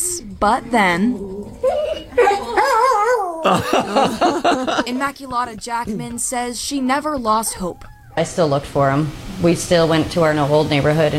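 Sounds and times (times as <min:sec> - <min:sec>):
speech: 0:00.3 - 0:01.3, 0:03.4 - 0:11.1
dog yipping and whimpering excitedly at reunion with its owner: 0:00.8 - 0:03.4, 0:07.4 - 0:08.3
laughter: 0:01.6 - 0:05.7.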